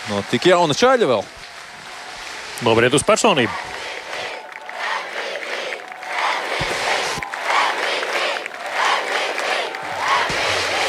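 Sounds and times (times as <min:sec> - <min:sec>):
speech: 0:00.1 - 0:01.4, 0:02.6 - 0:03.7
large crowd chanting: 0:03.1 - 0:10.8.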